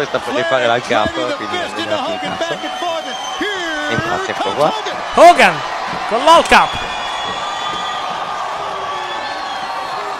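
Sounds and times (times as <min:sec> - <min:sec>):
speech: 0:00.0 - 0:02.7, 0:03.9 - 0:06.9
crowd shouting: 0:00.0 - 0:10.1
large wrestling arena crowd cheering at a strap match: 0:00.0 - 0:10.1
crowd whistles: 0:01.6 - 0:04.5, 0:06.4 - 0:10.1.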